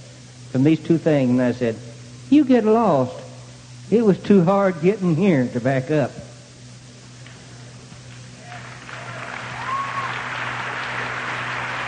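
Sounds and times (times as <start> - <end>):
speech: 0.5 - 3.2, 3.9 - 6.3
audience applause: 8.4 - 11.8.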